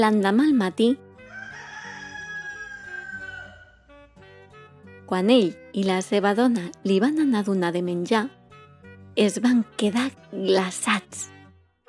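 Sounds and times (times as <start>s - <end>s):
speech: 0.0s - 1.0s, 5.1s - 8.4s, 9.2s - 11.4s
rooster crowing: 1.2s - 3.9s.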